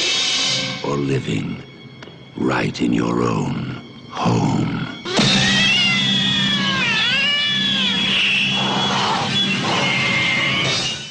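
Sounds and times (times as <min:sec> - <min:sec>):
speech: 0:01.0 - 0:01.8, 0:02.4 - 0:04.9
cat meowing and yowling: 0:05.1 - 0:11.0.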